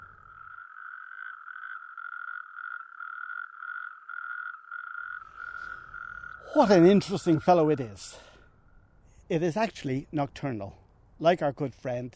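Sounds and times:
natterjack toad rattling trill: 0.0s - 8.0s
speech: 6.5s - 8.3s, 9.3s - 12.1s.

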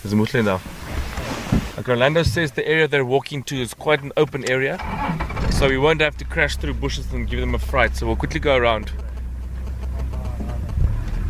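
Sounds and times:
speech: 0.0s - 0.8s, 1.8s - 9.0s
safari vehicle engine driving through bush: 3.6s - 11.2s.

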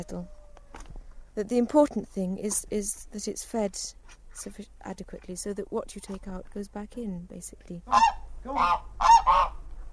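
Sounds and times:
speech: 0.0s - 0.8s, 1.4s - 8.9s
geese honking: 7.9s - 9.6s.

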